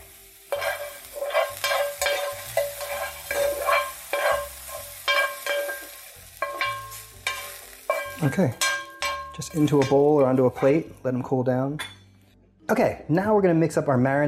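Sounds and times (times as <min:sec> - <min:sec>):
food sizzling in a pan: 0:00.0 - 0:11.0
speech: 0:08.2 - 0:08.6, 0:09.4 - 0:11.9, 0:12.7 - 0:14.2.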